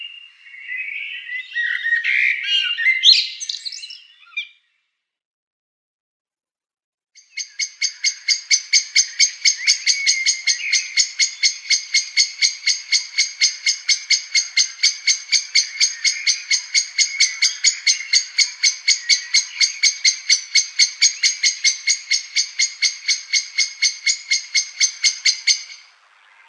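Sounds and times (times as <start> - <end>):
native birds warbling and chirping: 0.0 - 4.7, 7.2 - 26.4.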